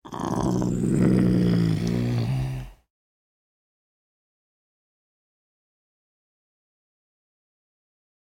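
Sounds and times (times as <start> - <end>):
wild animals: 0.0 - 2.8.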